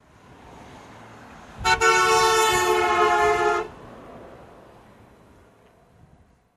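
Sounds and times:
car double horn passing by with Doppler shift: 1.6 - 3.8.

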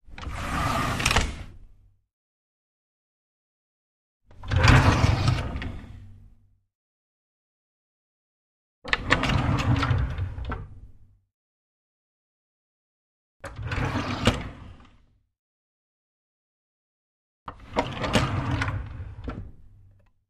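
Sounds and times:
wooden drawer opening and closing: 0.1 - 1.6, 4.3 - 6.1, 8.9 - 10.8, 17.6 - 19.6.

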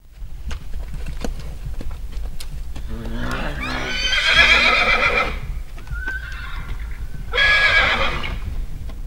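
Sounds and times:
horse trotting: 0.0 - 9.0
horse whinnying: 2.8 - 8.4.

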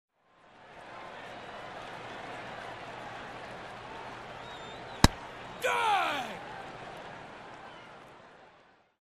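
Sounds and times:
crowd: 0.1 - 9.0
baseball pitch strike: 5.0 - 6.4.

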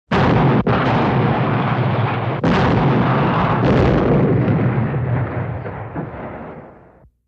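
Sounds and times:
modern artillery cannon fire quick round outdoors: 0.1 - 7.0.

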